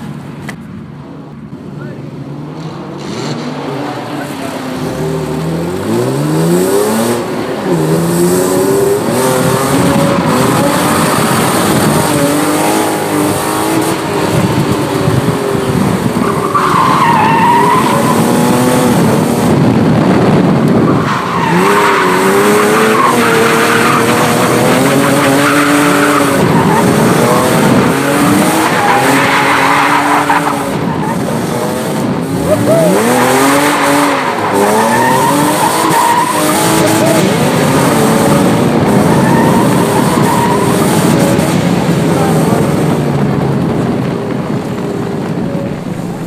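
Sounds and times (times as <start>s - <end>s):
car engine roaring through the gears on a racetrack: 0.0s - 46.2s
tires squealing through the corners: 2.6s - 46.2s.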